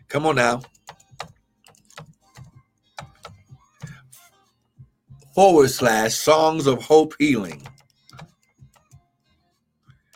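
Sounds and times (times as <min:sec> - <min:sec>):
speech: 0:00.1 - 0:00.8, 0:05.4 - 0:07.7
typing on a computer keyboard: 0:00.6 - 0:04.0, 0:07.5 - 0:09.0.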